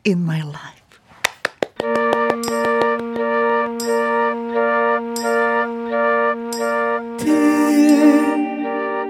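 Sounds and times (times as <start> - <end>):
speech: 0.0 - 0.8
count-in taps: 1.4 - 4.3, 5.1 - 5.5
soft sustained chords of a live ballad intro: 1.9 - 9.0.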